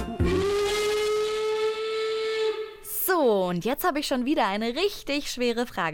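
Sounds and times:
steam train whistle blowing a long sustained tone: 0:00.2 - 0:03.0
speech: 0:03.5 - 0:05.9.

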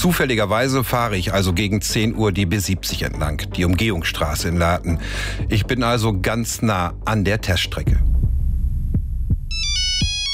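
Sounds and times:
speech: 0:00.0 - 0:08.1
heavy low thumps: 0:07.8 - 0:10.3
mobile phone ringing with a bright electronic melody: 0:09.5 - 0:10.3.

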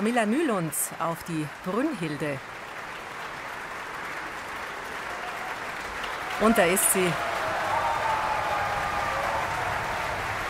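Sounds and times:
speech: 0:00.0 - 0:02.6, 0:06.4 - 0:07.4
large opera audience applause: 0:01.7 - 0:10.4.

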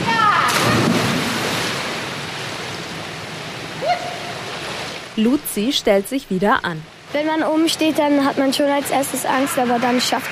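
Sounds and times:
girl plunging feet-first into pool water from a three-metre springboard: 0:00.4 - 0:02.0
speech: 0:05.2 - 0:10.3.

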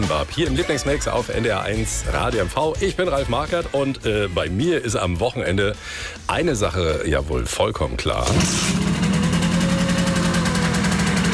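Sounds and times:
speech: 0:00.1 - 0:08.9
engine revving: 0:08.2 - 0:11.3.

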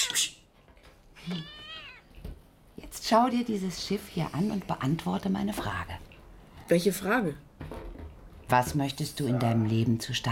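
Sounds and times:
cat giving a drawn-out whiny meow: 0:01.2 - 0:02.2
speech: 0:01.3 - 0:01.6, 0:03.1 - 0:06.1, 0:06.7 - 0:07.5, 0:08.5 - 0:10.2.

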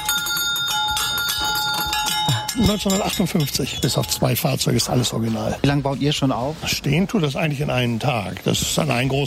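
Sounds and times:
1950s fire-engine bell ringing on carousel: 0:00.0 - 0:04.7
faint fairground bustle: 0:00.0 - 0:09.2
speech: 0:02.6 - 0:09.2.

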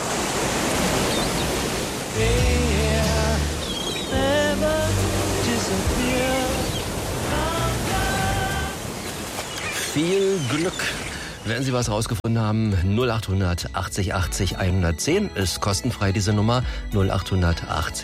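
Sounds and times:
steady ocean surf: 0:00.0 - 0:11.9
man singing melodic phrases: 0:02.1 - 0:08.8
speech: 0:10.0 - 0:18.0.

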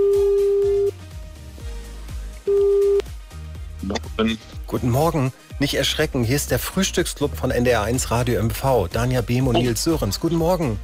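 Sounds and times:
telephone ringback tone: 0:00.0 - 0:00.9, 0:02.5 - 0:03.0
quiet music: 0:00.0 - 0:10.8
speech: 0:04.2 - 0:10.8.

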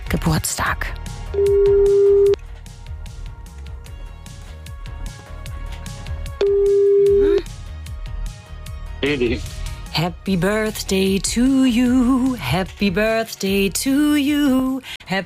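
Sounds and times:
speech: 0:00.1 - 0:02.2, 0:09.1 - 0:15.2
telephone ringback tone after dialing a call: 0:01.4 - 0:02.4, 0:06.4 - 0:07.4.

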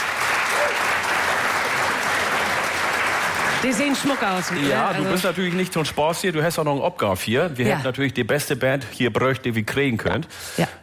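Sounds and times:
audience applause: 0:00.0 - 0:06.2
speech: 0:03.6 - 0:10.8.

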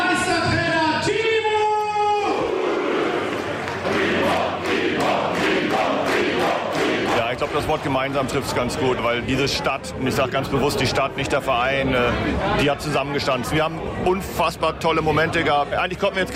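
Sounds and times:
large crowd of fans cheering and chanting outdoors at championship celebration: 0:00.2 - 0:08.5
crowd of fans shouting: 0:01.0 - 0:07.4
crowd of fans with sustained sung voices: 0:02.5 - 0:07.3
crowd applause: 0:03.3 - 0:08.1
speech: 0:07.7 - 0:16.3.

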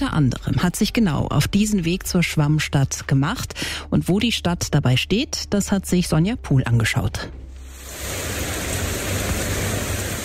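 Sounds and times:
speech: 0:00.0 - 0:07.4
heavy rain pouring during a thunderstorm: 0:07.7 - 0:10.2.

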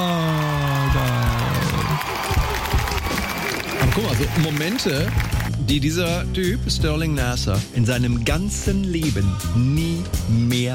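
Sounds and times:
crowd applauding and cheering with clapping and whoops: 0:00.0 - 0:05.8
speech: 0:04.0 - 0:10.7.

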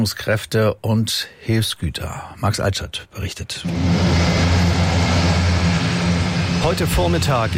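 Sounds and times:
speech: 0:00.0 - 0:04.7, 0:06.6 - 0:07.5
large grey military transport aircraft with loud propellers taking off: 0:03.6 - 0:07.5.

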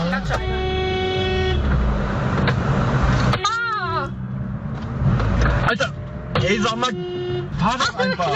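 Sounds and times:
car horns honked by stressed drivers in busy traffic: 0:00.0 - 0:02.1, 0:03.2 - 0:04.3, 0:05.6 - 0:08.3
steady rumble of engines: 0:00.0 - 0:08.3
street noise: 0:00.0 - 0:08.3.

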